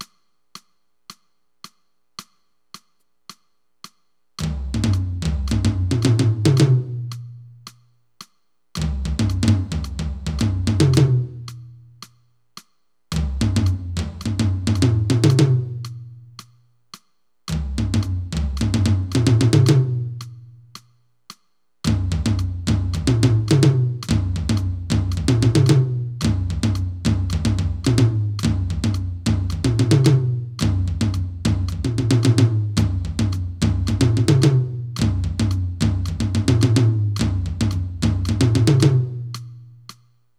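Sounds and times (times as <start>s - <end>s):
tom-tom drum pattern: 0.0s - 40.2s.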